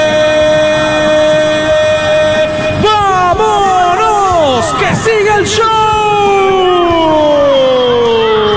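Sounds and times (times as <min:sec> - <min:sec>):
steady tonal noise: 0:00.2 - 0:08.4
referee's whistle restarting the second half of a football match: 0:02.8 - 0:08.0.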